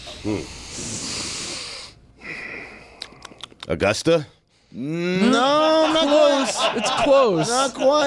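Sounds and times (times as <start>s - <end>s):
speech: 0.2s - 1.1s, 3.7s - 8.0s
people sniffing deeply through the nose to place a smell: 0.3s - 2.6s
laughter: 5.2s - 8.0s.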